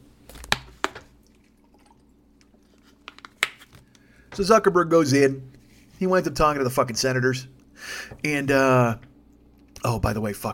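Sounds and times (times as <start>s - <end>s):
person sipping water: 1.2s - 3.0s
speech: 4.4s - 9.1s, 9.8s - 10.5s.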